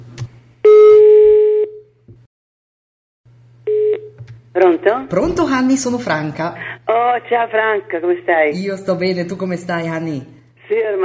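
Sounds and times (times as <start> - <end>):
outgoing telephone call ringing tone: 0.7 - 1.9, 3.7 - 4.2
speech: 4.6 - 11.0.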